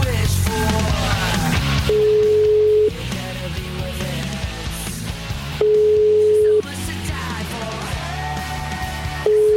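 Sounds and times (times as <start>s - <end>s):
music: 0.0s - 9.5s
telephone ringing tone while a call is placed: 1.9s - 3.0s, 5.6s - 6.7s, 9.2s - 9.5s.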